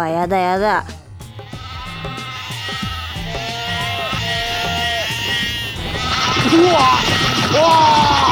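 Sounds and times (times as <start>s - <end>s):
speech: 0.0s - 1.0s, 6.4s - 8.3s
sheep bleating: 1.4s - 8.3s.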